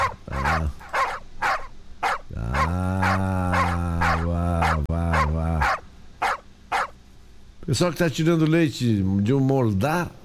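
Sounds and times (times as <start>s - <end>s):
deep drawn-out droning call: 0.0s - 6.9s
dogs barking in sharp loud yelps: 0.0s - 7.0s
speech: 7.7s - 10.2s.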